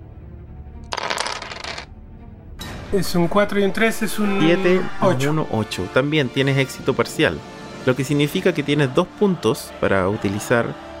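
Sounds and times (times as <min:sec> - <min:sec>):
two dice rattling across a hard surface: 0:00.9 - 0:01.9
speech: 0:02.9 - 0:10.9.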